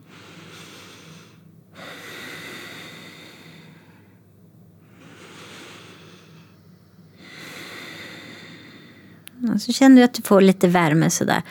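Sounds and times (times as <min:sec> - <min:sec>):
slow breathing through the nose: 0:00.0 - 0:04.2, 0:04.8 - 0:09.2
speech: 0:09.5 - 0:11.4.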